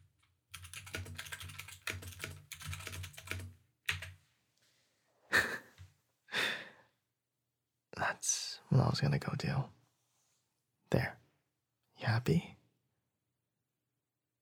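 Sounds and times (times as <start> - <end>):
fast typing on a computer keyboard: 0.1 - 4.2
breathy sighs: 6.3 - 6.9
speech: 8.1 - 9.8, 10.9 - 11.2, 12.0 - 12.6.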